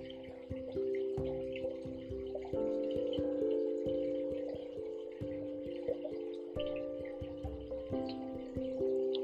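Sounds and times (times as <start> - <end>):
gentle stream flowing and trickling: 0.0 - 9.2
small water drips and splashes: 0.0 - 9.2
soft sustained musical tones: 0.0 - 9.2.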